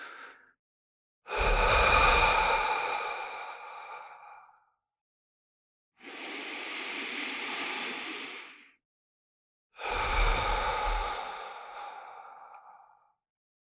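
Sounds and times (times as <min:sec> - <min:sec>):
deep breathing with an emphasized long exhale: 0:00.0 - 0:00.5, 0:01.3 - 0:04.7, 0:06.0 - 0:08.8, 0:09.8 - 0:13.1.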